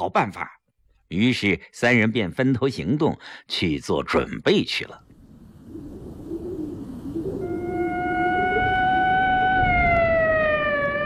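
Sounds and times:
speech: 0.0 - 5.0
police car siren wailing: 6.4 - 11.0.

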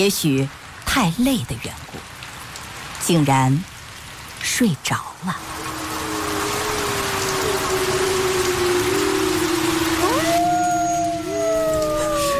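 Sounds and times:
speech: 0.0 - 2.1, 3.0 - 3.7, 4.4 - 5.6
heavy rain pouring: 0.0 - 12.3
long sliding droning tones: 5.4 - 12.3.

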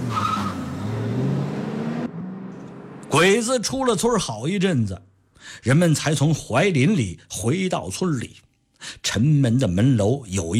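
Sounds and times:
car engine revving hard, speeding off out of a village: 0.0 - 3.4
car tires squealing: 0.0 - 3.4
speech: 3.1 - 10.5.

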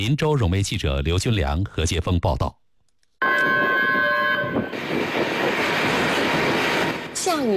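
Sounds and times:
speech: 0.0 - 2.6
train horn of the Hongqiqu red tourism train: 3.2 - 6.9
heavy rumble of the Hongqiqu red tourism train rolling into Hongqiqu Station: 3.2 - 7.5.

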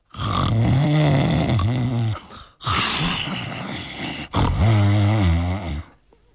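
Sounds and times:
performer imitating loud snoring of a man sleeping heavily: 0.0 - 6.0.

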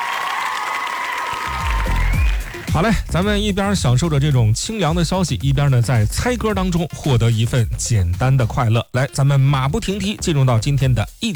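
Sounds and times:
applause: 0.0 - 3.1
people cheering: 0.0 - 3.6
speech: 2.8 - 11.3.

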